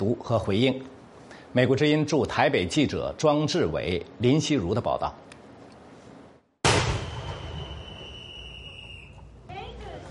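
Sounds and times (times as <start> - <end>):
speech: 0.0 - 5.2
cannon boom of a 21-gun salute: 6.6 - 8.1.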